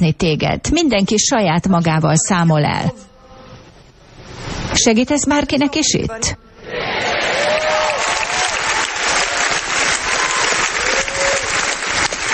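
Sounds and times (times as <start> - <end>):
speech: 0.0 - 3.1, 4.4 - 7.0
whistles and cheers: 6.9 - 12.1
large audience clapping: 7.0 - 12.3.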